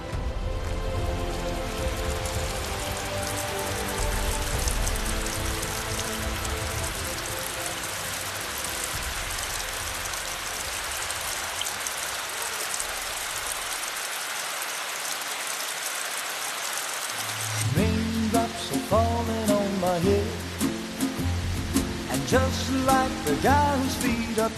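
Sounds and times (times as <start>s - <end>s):
dense rain falling in a mountain gorge in Upper Bavaria at the foot of the Untersberg: 0.0s - 24.5s
speech: 22.3s - 24.5s.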